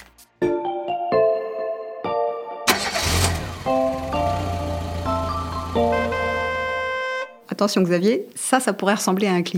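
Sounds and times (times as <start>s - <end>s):
bright musical notes: 0.4s - 7.5s
car engine cranking and catching into a steady rumble: 2.7s - 6.9s
speech: 7.6s - 9.5s.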